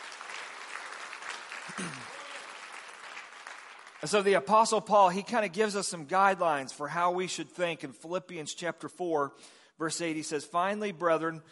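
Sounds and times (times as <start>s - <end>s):
crowd clapping: 0.0s - 4.5s
speech: 1.8s - 2.1s, 4.0s - 11.4s.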